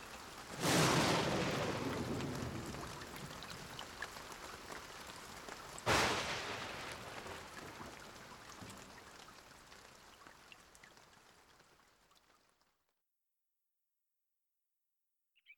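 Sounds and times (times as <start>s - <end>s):
steady rain: 0.0s - 12.8s
loud rumbling thunderclaps: 0.5s - 3.8s, 5.8s - 8.7s.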